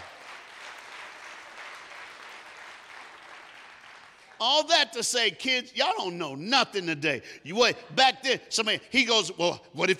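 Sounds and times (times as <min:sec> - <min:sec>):
audience clapping hands: 0:00.0 - 0:04.7
speech: 0:04.4 - 0:09.9.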